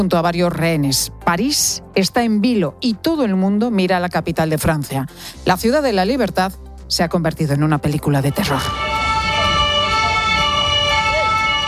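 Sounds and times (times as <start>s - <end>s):
speech: 0.0s - 8.9s
ambulance siren wailing: 8.3s - 11.6s
busy street din: 8.4s - 11.6s.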